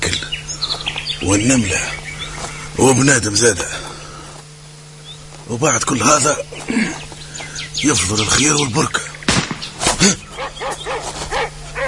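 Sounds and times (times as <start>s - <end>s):
speech: 1.2s - 2.0s, 2.8s - 3.8s, 5.5s - 7.0s, 7.8s - 9.0s, 10.0s - 10.2s
dogs barking: 10.3s - 11.8s.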